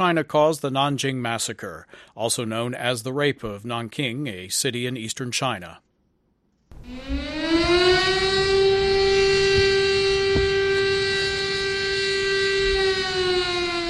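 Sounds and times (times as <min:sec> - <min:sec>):
speech: 0:00.0 - 0:05.9
civil defense siren wailing in Nanjing China: 0:06.7 - 0:13.8.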